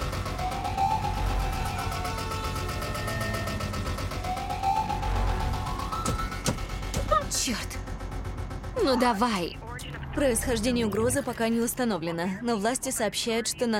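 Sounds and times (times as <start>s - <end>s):
car speeding along a road with a loud steady engine roar: 0.0s - 11.7s
wailing tone rising and falling: 0.4s - 6.4s
speech: 7.4s - 7.8s, 8.8s - 9.6s, 10.2s - 13.7s.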